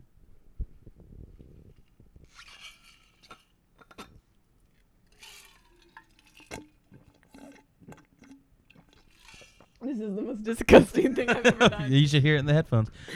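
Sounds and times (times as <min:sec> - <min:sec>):
person drinking water with wet slurps and gulps: 0:01.8 - 0:09.8
speech: 0:10.0 - 0:13.1
laughter: 0:10.6 - 0:12.1.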